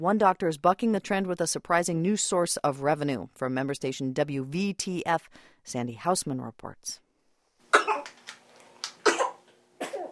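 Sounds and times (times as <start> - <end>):
speech: 0.0 - 7.0
child giving small short coughs: 7.7 - 8.2, 9.0 - 10.1.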